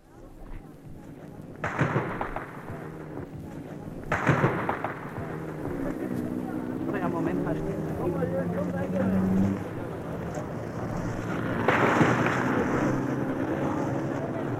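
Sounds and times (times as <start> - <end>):
faint crowd murmur: 0.0 - 14.5
steady outdoor rumble: 0.0 - 14.5
gunshots echoing off buildings in city streets: 1.6 - 3.2, 4.0 - 6.0, 11.1 - 13.4.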